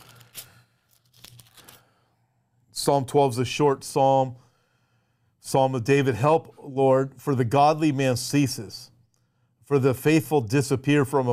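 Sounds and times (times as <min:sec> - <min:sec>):
paper crinkling and rustling as a paper clip is slid off sheets: 0:00.0 - 0:01.8
speech: 0:02.8 - 0:04.4, 0:05.5 - 0:08.8, 0:09.7 - 0:11.3.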